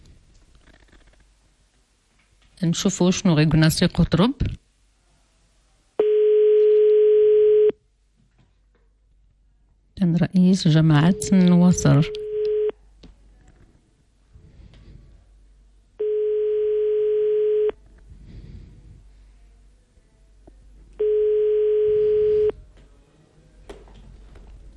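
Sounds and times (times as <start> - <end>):
quiet hiss: 0.0 - 24.7
speech: 2.6 - 4.6, 10.2 - 12.2
phone line ringing while someone places a call: 6.0 - 7.7, 11.0 - 12.7, 16.0 - 17.8, 21.0 - 22.5.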